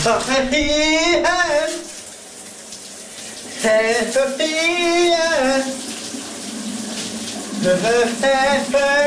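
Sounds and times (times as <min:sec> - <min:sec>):
man singing loudly in the shower: 0:00.0 - 0:02.0, 0:03.6 - 0:05.8, 0:07.6 - 0:09.0
shower water running: 0:00.0 - 0:09.0.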